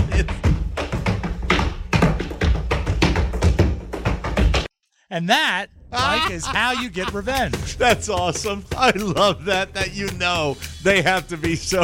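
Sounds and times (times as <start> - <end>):
woman's feet stomping against a living room ceiling: 0.0 - 4.7
speech: 5.1 - 11.8
laughter: 6.0 - 7.9.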